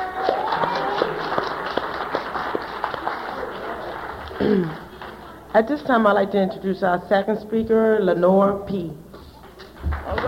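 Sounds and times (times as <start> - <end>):
room of people applauding: 0.0 - 5.5, 9.7 - 10.2
speech: 5.5 - 9.0.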